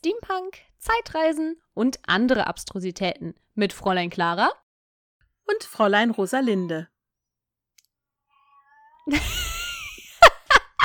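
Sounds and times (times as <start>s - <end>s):
speech: 0.0s - 4.6s, 5.5s - 6.9s, 9.1s - 9.4s
cat meowing: 8.3s - 9.1s.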